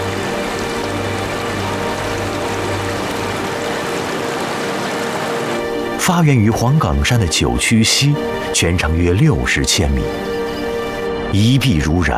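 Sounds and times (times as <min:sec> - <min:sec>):
powerful waterfall with a large drop roaring after a summer rainstorm: 0:00.0 - 0:06.0
speech: 0:06.1 - 0:10.6, 0:11.3 - 0:12.1.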